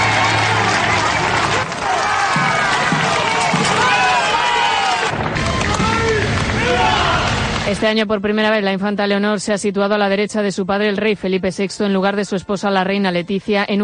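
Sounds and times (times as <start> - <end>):
large crowd cheering and shouting at a parade in Spain: 0.0 - 7.8
scattered clapping at a parade: 0.0 - 7.8
speech: 7.7 - 13.8.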